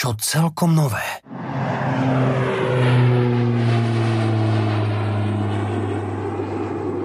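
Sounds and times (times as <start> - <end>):
speech: 0.0 - 3.0
airplane engine droning overhead with propeller buzz: 0.9 - 7.0.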